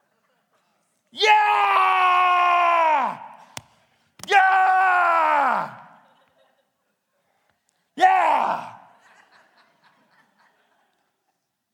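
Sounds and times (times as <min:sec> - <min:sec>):
speech: 0:01.1 - 0:01.7
single voice imitating soldiers' battle yell: 0:01.2 - 0:03.5, 0:04.2 - 0:06.0, 0:08.0 - 0:08.9
laughter: 0:05.8 - 0:07.1, 0:08.6 - 0:11.5.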